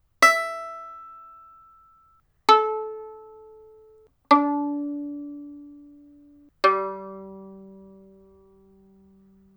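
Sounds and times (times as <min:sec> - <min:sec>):
violin plucked: 0:00.2 - 0:09.5.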